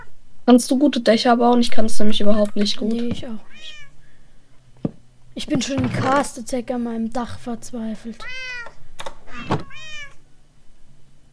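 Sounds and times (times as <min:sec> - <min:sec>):
speech: 0:00.5 - 0:03.8, 0:05.4 - 0:08.6
cat meowing: 0:03.4 - 0:04.0, 0:08.2 - 0:10.2
dull knocks: 0:09.3 - 0:09.8.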